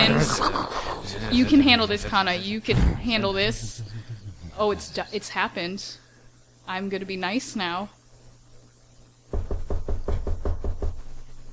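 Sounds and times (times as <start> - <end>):
speech: 0.0 - 3.8, 4.6 - 6.0, 6.7 - 8.0
laughter: 0.0 - 5.3
knocking on a wooden closet door: 9.3 - 11.0.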